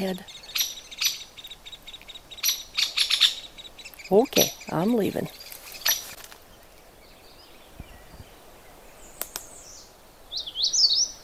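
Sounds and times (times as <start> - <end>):
speech: 0.0 - 0.4, 4.1 - 5.4
magnolia warbler singing a short simple song: 0.0 - 11.2.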